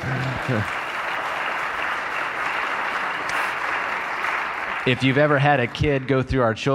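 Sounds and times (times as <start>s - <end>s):
church crowd applause: 0.0s - 6.7s
speech: 0.1s - 0.8s, 4.8s - 6.7s.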